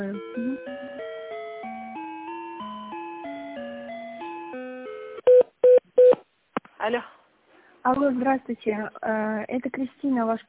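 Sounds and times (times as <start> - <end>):
telephone tones as a call is transferred: 5.2 - 6.2
speech: 6.9 - 7.2, 7.8 - 10.4.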